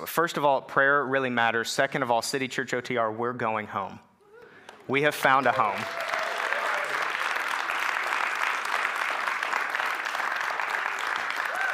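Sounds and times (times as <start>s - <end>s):
speech: 0.0s - 4.1s, 4.9s - 6.1s
room full of people applauding: 5.2s - 11.7s.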